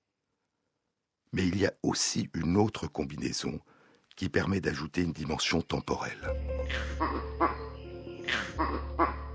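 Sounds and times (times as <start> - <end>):
speech: 1.3 - 9.2
harsh primate alarm calls signalling an eagle attacking in the canopy: 6.6 - 9.3.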